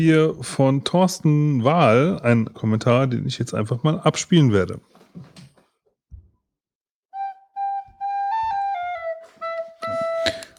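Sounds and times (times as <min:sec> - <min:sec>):
speech: 0:00.0 - 0:05.4
recorder flute playing a short stepwise melody: 0:07.2 - 0:10.5.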